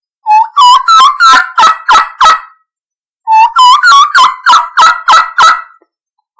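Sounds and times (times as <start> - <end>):
turkey kee kee run calls: 0.3 - 2.6, 3.3 - 5.8.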